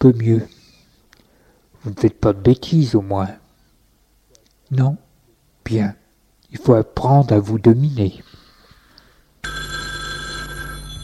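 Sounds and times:
speech: 0.0 - 0.6, 1.8 - 3.4, 4.7 - 5.0, 5.6 - 8.3
telephone bell ringing: 9.4 - 11.0.

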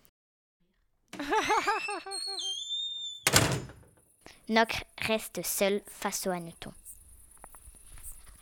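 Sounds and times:
door shutting with a solid thud: 1.1 - 4.0
person laughing in quick bouncing bursts: 1.2 - 2.5
speech: 1.4 - 3.6, 4.5 - 6.8.

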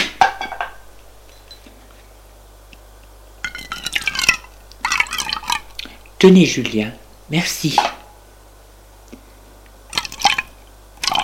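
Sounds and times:
drink poured from a bottle into glasses: 3.5 - 6.0, 9.9 - 11.2
speech: 6.2 - 8.0.

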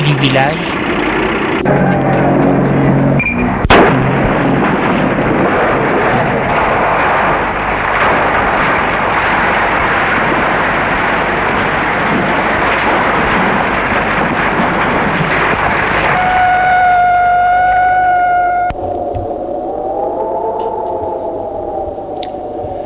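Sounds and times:
truck blowing up on a landmine: 0.0 - 19.6
long roaring rumble after a landmine blast: 0.0 - 22.8
speech: 0.1 - 2.2
high wavering ringing tone: 1.6 - 3.7, 16.2 - 18.8.

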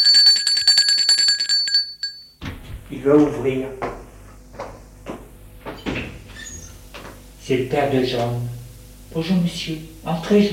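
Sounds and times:
home doorbell ringing: 0.0 - 2.4
speech: 2.9 - 3.9, 7.5 - 8.6, 9.2 - 10.5.

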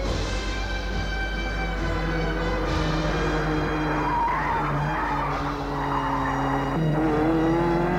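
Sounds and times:
racing car engine roaring: 0.0 - 7.9
car tires squealing and skidding: 1.7 - 7.9.

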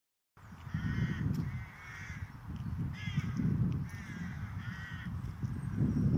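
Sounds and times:
several crows cawing in a park: 0.6 - 5.2.

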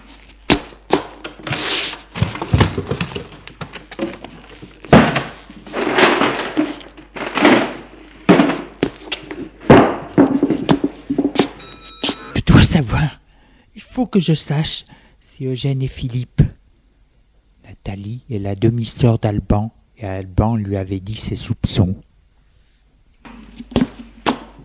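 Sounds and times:
rustling and shuffling of objects: 0.0 - 12.2
thumps and knocks from rummaging through cupboards and a wardrobe: 0.5 - 11.6, 23.2 - 24.6
speech: 12.8 - 13.2, 14.0 - 16.4, 17.9 - 22.0.

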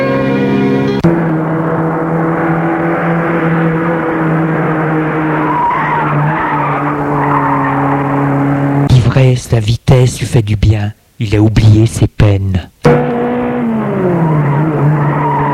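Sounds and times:
car engine roaring as the vehicle speeds away: 0.0 - 9.0, 12.8 - 15.5
tires screeching: 0.8 - 8.9, 12.8 - 15.5
speech: 9.6 - 12.8.

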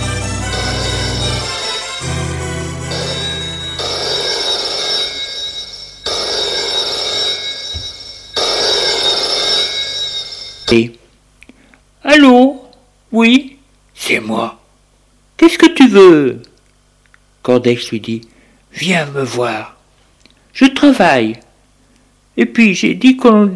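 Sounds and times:
telephone ringing with bell-like bursts: 0.0 - 10.8
low humming sound: 0.0 - 11.8
speech: 10.7 - 11.0, 13.2 - 13.4, 14.1 - 14.6, 15.4 - 16.5, 17.4 - 19.8, 20.6 - 21.4, 22.4 - 23.5.

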